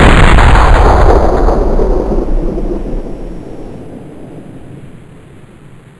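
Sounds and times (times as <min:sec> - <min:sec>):
AUG weapon fire: 0:00.0 - 0:03.8.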